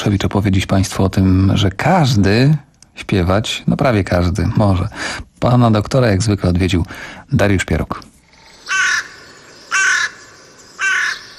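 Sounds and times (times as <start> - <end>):
speech: 0.0 - 8.1
low hiss: 0.0 - 11.3
carrion crow cawing: 8.6 - 11.3.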